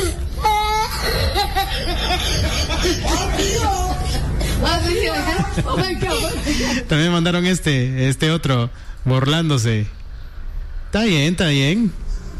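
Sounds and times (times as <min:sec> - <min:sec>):
child crying and laughing at once: 0:00.0 - 0:06.9
busy background: 0:00.0 - 0:12.3
speech: 0:04.6 - 0:10.0, 0:10.9 - 0:12.0.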